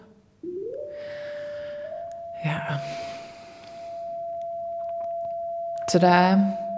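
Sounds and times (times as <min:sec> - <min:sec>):
steady electronic synthesizer oscillator tone with bright harmonics: 0:00.0 - 0:05.0
speech: 0:02.4 - 0:03.0, 0:05.9 - 0:06.6.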